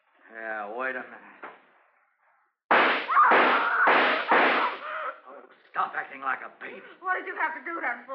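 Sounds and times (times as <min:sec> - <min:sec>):
speech: 0:00.4 - 0:01.5, 0:05.8 - 0:08.1
gunshots fired into a wall: 0:02.7 - 0:04.9.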